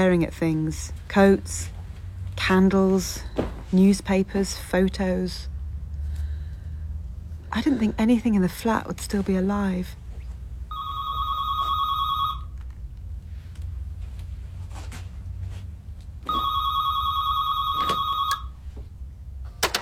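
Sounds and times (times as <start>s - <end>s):
speech: 0.0s - 1.8s, 2.4s - 5.5s, 7.5s - 10.0s
low hum: 0.0s - 19.8s
landline telephone ringing: 10.7s - 12.6s, 16.2s - 18.6s.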